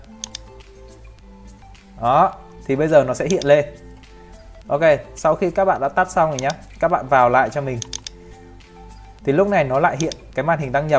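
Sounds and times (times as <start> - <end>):
computer mouse clicks: 0.1 - 0.7, 3.2 - 3.6, 6.3 - 6.6, 7.8 - 8.2, 10.0 - 10.3
speech: 2.0 - 3.8, 4.7 - 8.0, 9.2 - 10.9.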